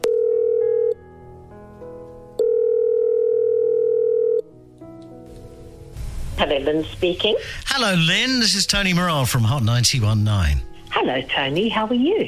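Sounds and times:
short telephone line tone: 0.0 - 1.0, 2.4 - 4.5
speech: 6.6 - 12.2.

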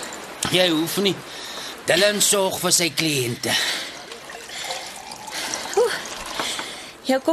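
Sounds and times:
speech: 0.5 - 3.9, 7.1 - 7.3
water pouring into a glass in a coffee shop: 3.9 - 6.8
small glass clink: 4.1 - 5.4.

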